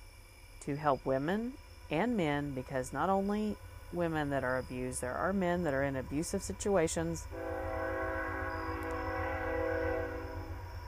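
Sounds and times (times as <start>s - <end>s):
speech: 0.7s - 7.8s
train rumbling: 0.9s - 10.8s
train horn blaring: 7.3s - 10.8s.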